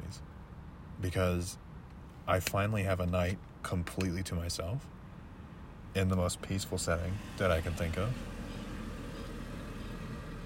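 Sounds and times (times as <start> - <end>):
speech: 1.0 - 1.7, 2.3 - 5.0, 6.0 - 8.4
car driving past behind a police station: 7.0 - 10.4.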